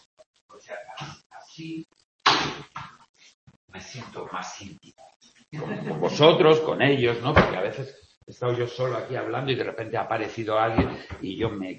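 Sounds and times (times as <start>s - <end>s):
speech: 0.6s - 2.9s, 3.8s - 11.7s
laughter: 5.6s - 6.6s
door slamming shut: 7.3s - 7.8s.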